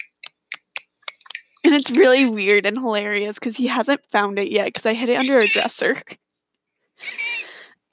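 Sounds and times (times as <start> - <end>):
speech: 1.8 - 6.2
human voice imitating a shrill raspy bird call: 7.0 - 7.6.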